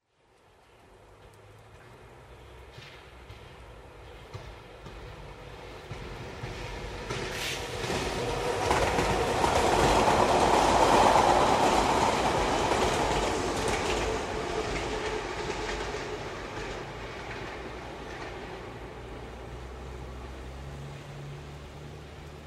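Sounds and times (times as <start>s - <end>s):
train: 0.0s - 22.4s.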